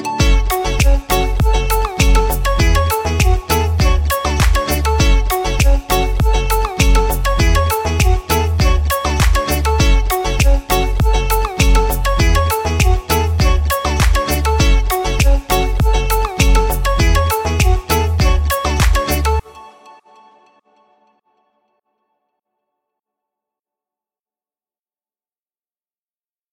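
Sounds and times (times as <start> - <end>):
full drum kit loop: 0.2 - 19.2.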